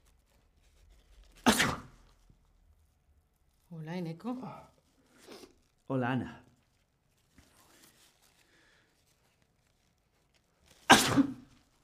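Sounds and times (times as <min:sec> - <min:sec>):
single sharp sneeze: 0:01.4 - 0:02.1, 0:10.8 - 0:11.6
speech: 0:04.0 - 0:04.8, 0:05.9 - 0:06.4.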